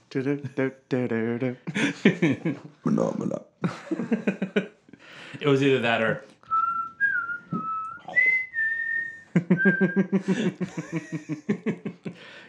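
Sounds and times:
speech: 0.1 - 4.7, 5.4 - 6.3, 9.4 - 12.4
person laughing: 1.6 - 2.7, 3.6 - 4.7, 9.3 - 12.2
person whistling a quiz-show countdown melody: 6.5 - 10.2.

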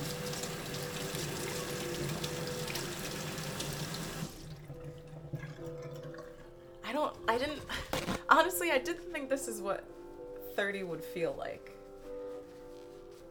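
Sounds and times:
tap water running while hands are rinsed: 0.0 - 7.5
speech: 7.0 - 7.8, 8.4 - 9.9, 10.6 - 11.8.

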